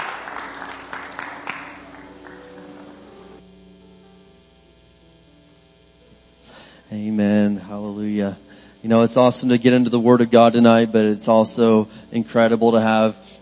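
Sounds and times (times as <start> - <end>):
audience clapping hands: 0.0 - 3.4
sustained organ-like chords: 0.0 - 13.3
speech: 6.9 - 13.3.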